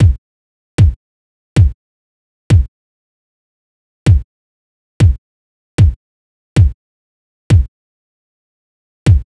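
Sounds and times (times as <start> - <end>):
hip hop kick drum in A minor: 0.0 - 0.2, 0.8 - 1.0, 1.6 - 1.8, 2.5 - 2.7, 4.1 - 4.3, 5.0 - 5.2, 5.8 - 6.0, 6.6 - 6.8, 7.5 - 7.7, 9.1 - 9.2.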